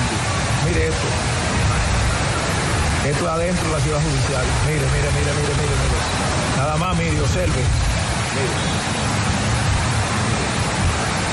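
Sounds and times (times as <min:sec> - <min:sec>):
heavy rain falling inside a courthouse complex building in the city: 0:00.0 - 0:11.3
speech: 0:00.9 - 0:01.4, 0:03.1 - 0:09.2.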